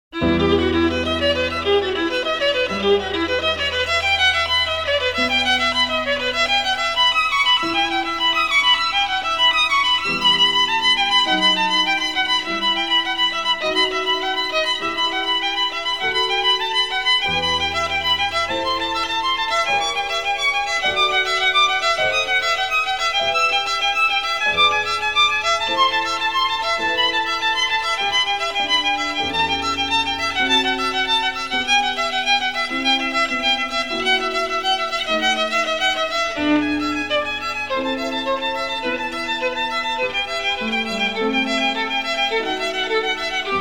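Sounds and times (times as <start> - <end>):
violin playing allegro: 0.1 - 43.6.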